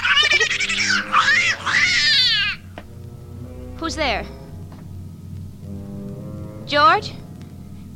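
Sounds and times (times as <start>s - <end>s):
cat yowling: 0.9s - 2.7s
speech: 3.9s - 4.4s, 6.7s - 7.2s.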